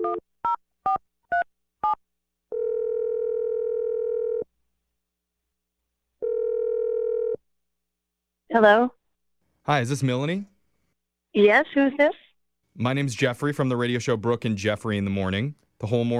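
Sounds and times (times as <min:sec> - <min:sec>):
speech: 0:00.1 - 0:00.3, 0:08.5 - 0:09.0, 0:09.7 - 0:10.5, 0:11.3 - 0:12.2, 0:12.8 - 0:16.1
telephone dial tone: 0:02.5 - 0:04.5, 0:06.2 - 0:07.4.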